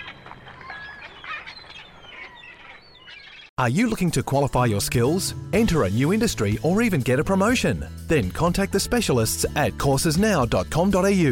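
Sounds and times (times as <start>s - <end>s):
parrot squawking and chirping: 0.5s - 3.5s
speech: 3.6s - 11.3s.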